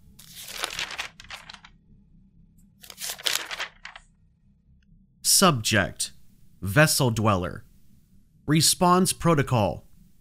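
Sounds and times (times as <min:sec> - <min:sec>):
old piece of paper crinkling and rustling as it is handled: 0:00.2 - 0:01.7, 0:02.8 - 0:04.1
speech: 0:05.4 - 0:07.7, 0:08.5 - 0:09.9.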